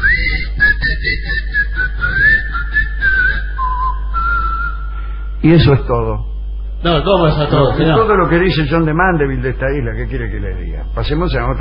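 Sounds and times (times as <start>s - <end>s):
laughter: 0.0s - 1.7s, 6.9s - 8.7s
people on an island whistling back and forth: 0.0s - 5.0s
low hum: 0.0s - 11.5s
speech: 5.4s - 11.5s.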